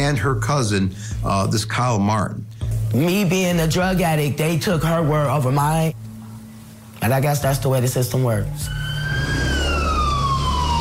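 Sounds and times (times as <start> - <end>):
speech: 0.1 - 6.0, 7.0 - 9.3
ambulance siren wailing: 8.3 - 10.7.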